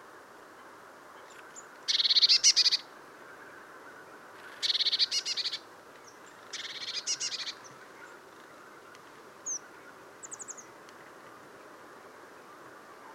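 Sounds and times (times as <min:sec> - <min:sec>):
Eurasian blue tit Cyanistes caeruleus giving rapid high scolding calls: 0:01.9 - 0:02.8, 0:04.6 - 0:05.6, 0:06.5 - 0:07.6.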